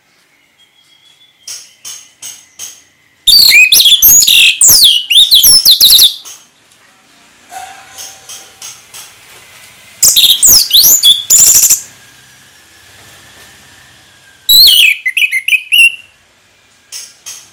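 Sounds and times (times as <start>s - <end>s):
orange-headed thrush singing vigorously in whistled phrases: 0.1s - 6.3s, 10.0s - 11.9s, 14.5s - 16.2s.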